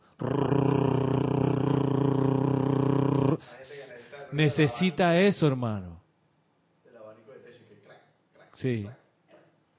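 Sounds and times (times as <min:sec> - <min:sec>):
person's voice imitating a fan motor hum: 0:00.0 - 0:03.4
speech: 0:04.4 - 0:06.0, 0:08.6 - 0:09.0.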